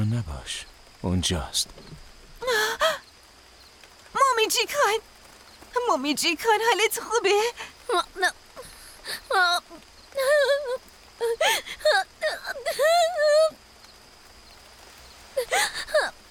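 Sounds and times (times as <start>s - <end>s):
steady faint hiss: 0.0s - 16.2s
speech: 0.2s - 2.6s, 4.4s - 5.1s, 5.8s - 8.4s
person whimpering: 2.4s - 3.0s, 7.9s - 13.5s, 15.4s - 16.1s
sobbing cries: 2.4s - 3.0s, 7.5s - 13.6s, 15.4s - 16.2s.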